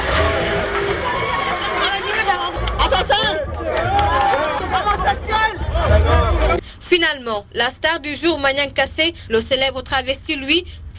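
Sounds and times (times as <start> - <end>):
crowd of curious onlookers chattering outdoors: 0.0 - 6.6
speech: 7.0 - 10.8.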